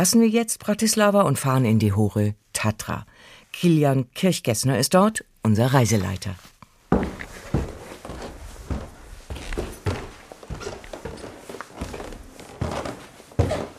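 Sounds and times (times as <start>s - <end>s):
speech: 0.0s - 6.5s
faint creak of wooden stair boards: 6.9s - 13.7s
guests' footsteps climbing a wooden staircase of a villa in the High Tatras: 6.9s - 13.7s.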